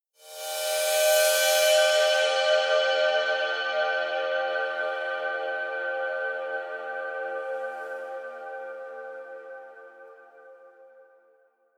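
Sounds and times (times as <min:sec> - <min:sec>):
bowed bell: 0:00.2 - 0:10.9.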